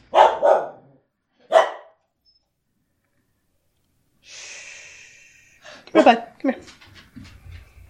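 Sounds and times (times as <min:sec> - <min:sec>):
dog barking: 0:00.0 - 0:02.0
soft hissing noise: 0:03.1 - 0:05.8
speech: 0:05.9 - 0:06.8.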